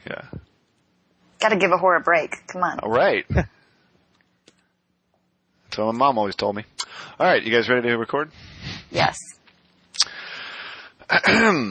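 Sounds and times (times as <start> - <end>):
speech: 1.4 - 3.6, 5.8 - 9.3, 11.1 - 11.7
gravelly voiced throat clearing: 11.1 - 11.7
person coughing: 11.1 - 11.7.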